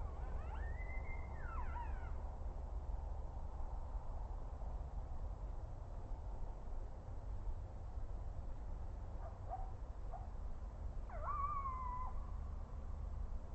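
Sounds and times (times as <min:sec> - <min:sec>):
coyote yips: 0:00.0 - 0:02.2, 0:11.1 - 0:12.3
constant low rumble: 0:00.0 - 0:13.5.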